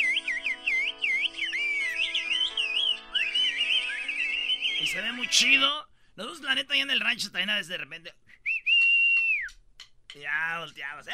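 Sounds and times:
woman whistling a whistled language: 0.0s - 4.9s, 8.4s - 9.6s
speech: 4.8s - 8.2s, 10.2s - 11.1s.

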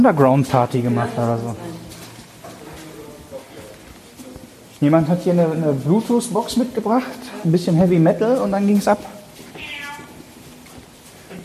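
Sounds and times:
speech: 0.0s - 1.7s, 4.8s - 9.2s
faint noisy background: 0.0s - 11.4s
cat meowing: 9.5s - 10.2s.

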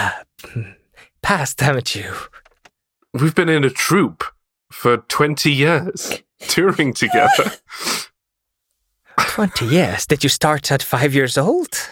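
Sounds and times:
speech: 0.0s - 2.4s, 3.1s - 8.1s, 9.2s - 11.8s
sneeze: 7.1s - 7.6s.

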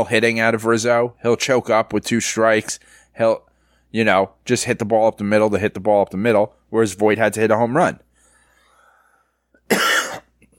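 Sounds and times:
speech: 0.0s - 8.1s
single harsh raspy cough: 9.7s - 10.5s.

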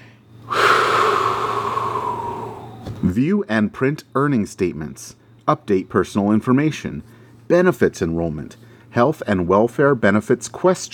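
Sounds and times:
deep breath intake: 0.0s - 3.0s
speech: 3.1s - 10.9s.

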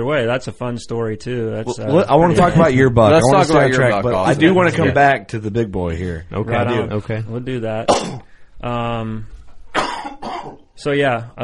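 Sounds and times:
speech: 0.0s - 9.4s, 10.8s - 11.4s
person coughing throaty and harsh: 7.9s - 8.3s, 9.7s - 10.7s.

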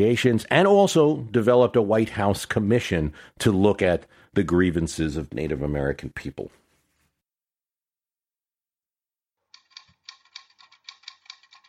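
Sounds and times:
speech: 0.0s - 6.6s
typewriter keys clacking: 9.6s - 11.6s.

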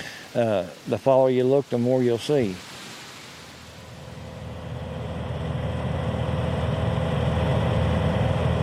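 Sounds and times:
speech: 0.4s - 2.7s
small airplane engine droning in flight over forested hills: 3.9s - 8.6s.

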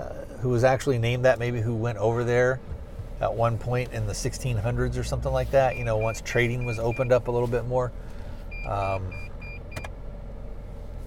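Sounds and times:
truck cabin hum: 0.0s - 11.0s
speech: 0.4s - 9.3s
truck parking sonar beeping: 4.6s - 7.3s, 8.5s - 10.0s.

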